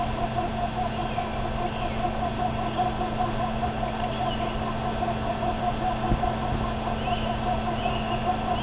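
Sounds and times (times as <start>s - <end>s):
birds: 0.0s - 8.6s.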